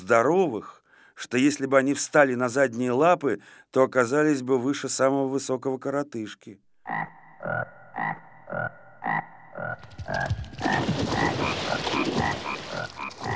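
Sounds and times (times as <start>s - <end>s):
speech: 0.0s - 13.3s
frogs croaking loudly in a chorus: 6.8s - 13.3s.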